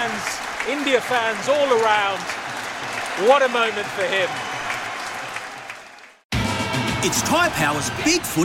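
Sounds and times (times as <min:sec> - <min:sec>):
large cricket crowd of England and India fans applauding a batsman: 0:00.0 - 0:08.4
speech: 0:00.7 - 0:04.4, 0:07.0 - 0:08.4.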